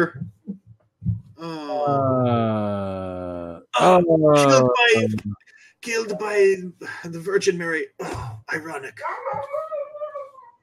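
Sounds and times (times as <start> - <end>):
speech: 0.0 - 0.3, 1.4 - 2.5, 3.8 - 9.6
dog howling: 9.0 - 10.6.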